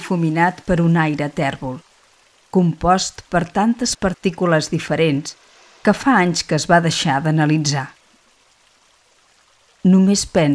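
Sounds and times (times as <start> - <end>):
dense rush of moving water splashing and trickling: 0.0 - 10.5
speech: 0.1 - 1.9, 2.5 - 8.0, 9.8 - 10.5.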